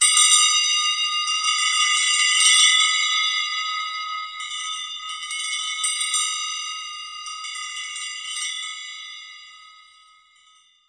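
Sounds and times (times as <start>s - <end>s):
meditation jangle bell: 0.0s - 10.8s.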